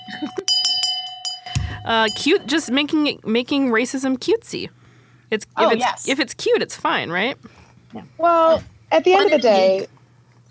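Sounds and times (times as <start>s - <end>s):
handbell clanging as a shame bell sound effect: 0.0s - 2.8s
speech: 1.9s - 9.9s.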